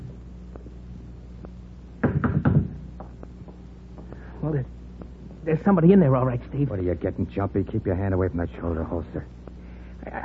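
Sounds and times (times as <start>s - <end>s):
firm knocking on a wooden front door: 2.0s - 2.7s
speech: 4.5s - 4.8s, 5.5s - 9.4s.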